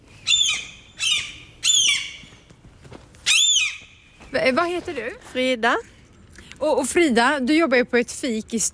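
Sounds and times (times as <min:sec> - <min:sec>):
gull squawking: 0:00.3 - 0:02.3
speech: 0:04.4 - 0:05.9, 0:06.6 - 0:08.7.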